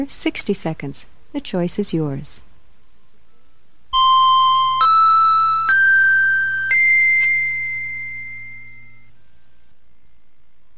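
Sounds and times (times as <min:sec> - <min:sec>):
speech: 0:00.0 - 0:02.5
faint low hum: 0:00.0 - 0:10.7
bright chime tones of a hypnosis session recording: 0:04.0 - 0:09.1.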